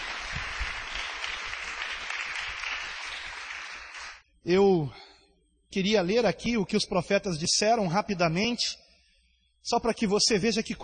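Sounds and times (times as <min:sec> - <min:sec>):
large crowd applauding: 0:00.0 - 0:04.2
speech: 0:04.4 - 0:05.0, 0:05.7 - 0:08.8, 0:09.6 - 0:10.8.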